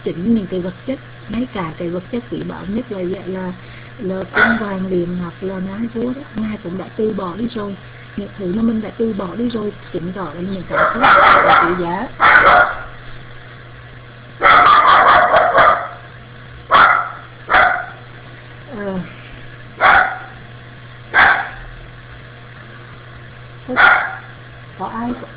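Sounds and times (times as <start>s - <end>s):
speech: 0.0s - 12.8s
low steady hum: 0.0s - 25.3s
two small dogs barking: 4.3s - 4.8s, 10.7s - 13.0s, 14.4s - 18.1s, 19.8s - 20.4s, 21.1s - 21.7s, 23.7s - 24.4s.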